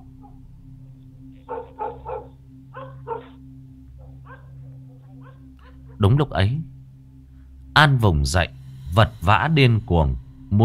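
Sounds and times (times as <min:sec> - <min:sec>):
steady low hum: 0:00.0 - 0:10.6
black dog barking: 0:01.4 - 0:03.4, 0:04.0 - 0:06.0
speech: 0:06.0 - 0:06.7, 0:07.8 - 0:10.6.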